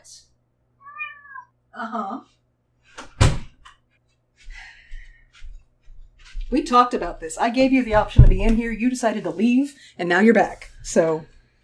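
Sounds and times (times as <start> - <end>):
cat meowing outside a door: 0.8 - 1.5
speech: 1.8 - 2.4, 6.5 - 11.3
door thump: 3.0 - 3.6, 7.9 - 8.6.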